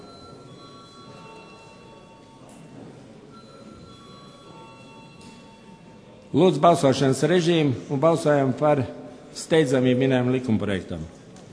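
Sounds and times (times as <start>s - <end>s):
loud electric parliament voting bell ringing: 0.0s - 2.5s, 3.3s - 7.1s
speech: 6.3s - 11.2s.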